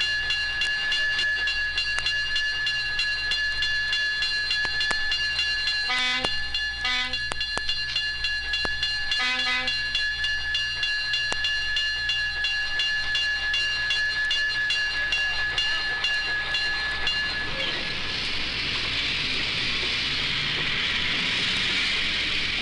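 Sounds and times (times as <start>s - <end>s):
toy train bell ringing to signal departure: 0.0s - 20.4s
rushing hiss: 17.7s - 22.6s.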